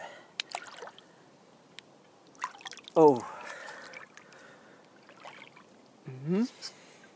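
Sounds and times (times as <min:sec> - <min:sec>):
person climbing down a ladder into cold water splashing: 0:00.4 - 0:01.1, 0:02.2 - 0:05.8
speech: 0:03.0 - 0:03.3.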